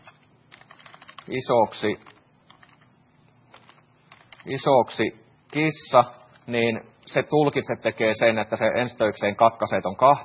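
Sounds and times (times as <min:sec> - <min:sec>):
typing on a computer keyboard: 0:00.0 - 0:01.3, 0:02.0 - 0:02.8, 0:03.5 - 0:04.5
speech: 0:01.3 - 0:02.1, 0:04.4 - 0:10.2.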